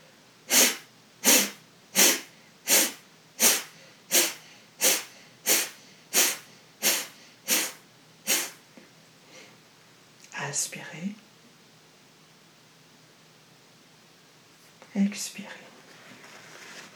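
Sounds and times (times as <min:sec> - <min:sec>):
breaths in and out through the right nostril during a breathing exercise: 0:00.5 - 0:08.6.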